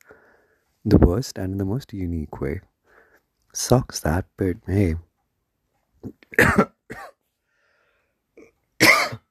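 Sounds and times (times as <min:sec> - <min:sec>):
speech: 0:00.8 - 0:02.7, 0:03.6 - 0:05.1, 0:06.0 - 0:07.1
throat clearing: 0:06.0 - 0:07.2, 0:08.4 - 0:09.2
person coughing: 0:06.3 - 0:07.2, 0:08.4 - 0:09.2.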